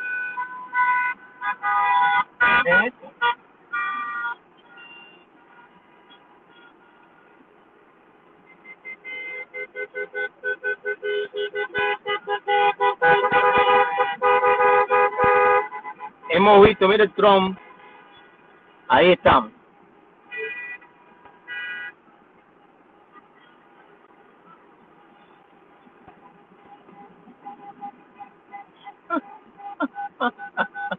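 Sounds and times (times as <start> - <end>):
large procession of cars passing: 0.0 - 30.9
speech: 16.5 - 17.6, 18.9 - 19.6.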